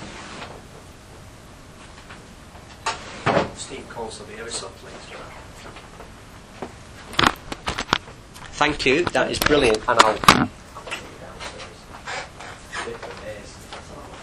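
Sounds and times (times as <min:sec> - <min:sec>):
drawer shutting with a sharp knock: 0:02.8 - 0:03.6
speech: 0:03.6 - 0:06.1, 0:08.6 - 0:10.6.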